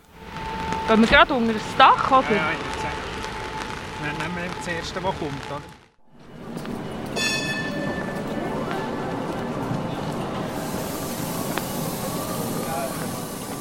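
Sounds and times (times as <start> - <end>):
tram rumbling in motion on a rainy day, heard from inside: 0.0 - 13.5
speech: 0.9 - 3.1, 4.0 - 5.8.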